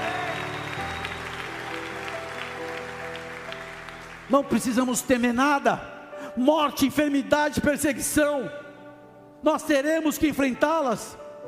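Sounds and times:
crowd applauding: 0:00.0 - 0:05.4
speech: 0:04.3 - 0:08.6, 0:09.4 - 0:11.2.

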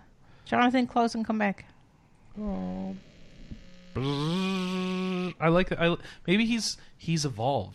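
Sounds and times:
speech: 0:00.5 - 0:01.7, 0:02.3 - 0:03.1, 0:03.9 - 0:07.7
electrical buzzing hum on a call line: 0:02.1 - 0:05.4.

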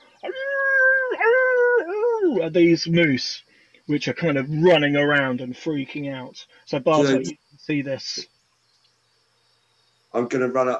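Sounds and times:
wolf-like howl from a host of halflings: 0:00.2 - 0:02.6
speech: 0:02.4 - 0:08.3, 0:10.1 - 0:10.7.

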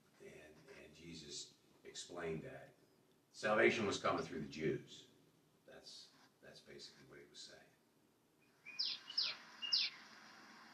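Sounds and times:
speech: 0:01.2 - 0:02.8, 0:03.4 - 0:05.1, 0:05.8 - 0:07.7
bird singing outdoors in Florida in springtime: 0:08.4 - 0:10.7.

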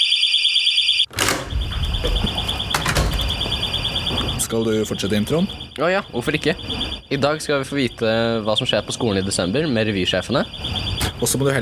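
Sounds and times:
shrill fire alarm ringing in rapid pulses: 0:00.0 - 0:11.5
door banging open: 0:01.1 - 0:04.5
speech: 0:04.5 - 0:11.5.

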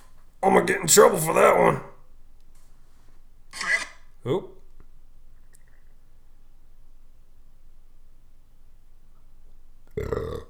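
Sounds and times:
speech: 0:00.4 - 0:01.9, 0:04.2 - 0:04.5
loud low throaty burp: 0:04.3 - 0:04.6, 0:10.0 - 0:10.4.

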